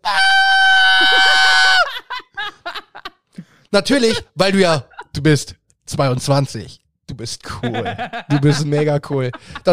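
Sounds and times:
person imitating a frightened high-pitched scream: 0:00.0 - 0:02.1
laughter: 0:01.1 - 0:03.2, 0:03.8 - 0:05.2, 0:07.5 - 0:09.7
short gasping bursts: 0:03.3 - 0:03.7
speech: 0:03.7 - 0:09.7.

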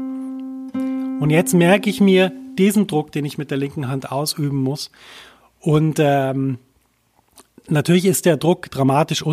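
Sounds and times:
clean sustained instrument note with rich overtones: 0:00.1 - 0:02.9
speech: 0:01.2 - 0:06.7, 0:07.7 - 0:09.3.

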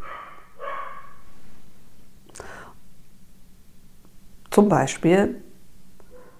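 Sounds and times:
dog barking: 0:00.0 - 0:01.3, 0:06.0 - 0:06.3
low steady hum: 0:00.0 - 0:06.3
speech: 0:04.6 - 0:05.4.

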